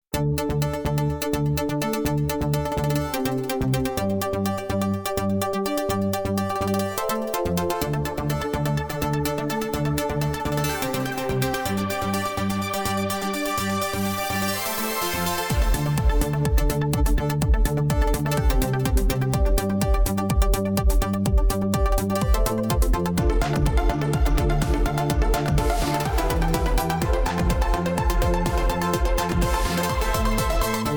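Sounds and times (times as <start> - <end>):
dj music montage: 0.2 - 30.9.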